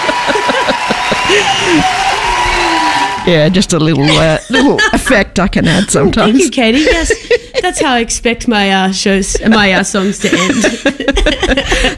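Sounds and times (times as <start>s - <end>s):
laughter: 0.0s - 2.5s, 3.9s - 8.1s, 9.4s - 11.9s
scattered cheers and whoops: 0.0s - 3.4s
dense crowd applause: 0.0s - 4.0s
speech: 1.3s - 2.1s, 3.2s - 11.9s.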